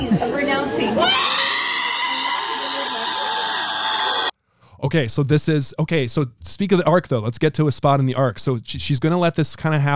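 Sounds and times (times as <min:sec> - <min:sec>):
crowd of people crying and screaming outdoors in a parking lot: 0:00.7 - 0:04.3
speech: 0:04.8 - 0:09.9.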